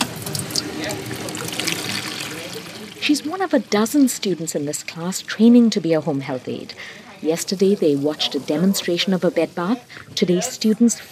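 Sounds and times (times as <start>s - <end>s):
warm water filling a plastic basin: 0.0s - 3.5s
speech: 3.1s - 11.0s.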